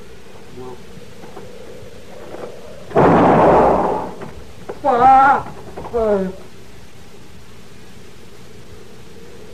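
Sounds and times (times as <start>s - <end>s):
gunshot fired by a woman on her land: 2.9s - 4.3s
speech: 4.8s - 6.4s.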